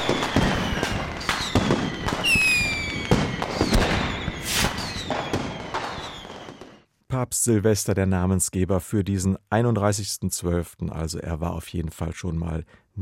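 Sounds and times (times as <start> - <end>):
New Year's Eve fireworks and firecrackers banging: 0.0 - 6.8
whistling rockets streaking upward: 0.0 - 6.8
speech: 7.3 - 13.0.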